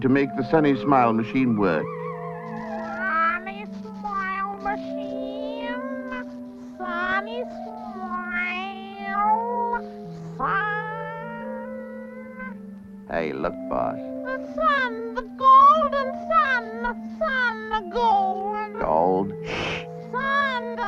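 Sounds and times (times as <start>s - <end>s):
speech: 0.0s - 2.0s, 13.1s - 20.8s
steady sustained musical drone: 0.0s - 20.8s
cat meowing: 1.8s - 6.3s, 8.0s - 9.8s, 10.4s - 12.6s.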